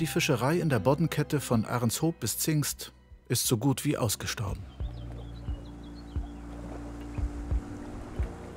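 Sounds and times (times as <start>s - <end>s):
speech: 0.0s - 4.7s
historic Zeesboot fishing boat creaking and knocking on lagoon water: 4.4s - 8.5s
faint bird chirps: 4.6s - 7.3s
steady low engine-like drone: 4.7s - 8.5s.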